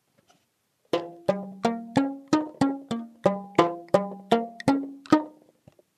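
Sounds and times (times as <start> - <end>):
rubber band kalimba: 1.0 - 5.4.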